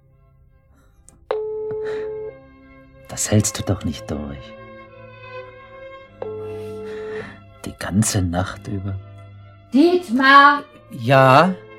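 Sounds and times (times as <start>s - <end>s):
telephone call ringing unanswered: 1.2s - 2.5s, 6.2s - 7.1s
speech: 3.2s - 4.6s, 7.8s - 9.1s, 9.7s - 11.6s.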